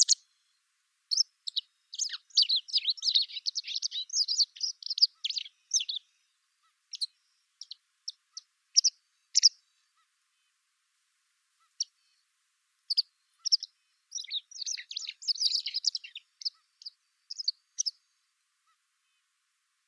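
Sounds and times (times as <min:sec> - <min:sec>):
white wagtail calls: 0:01.1 - 0:06.0, 0:06.9 - 0:09.6, 0:12.9 - 0:18.0.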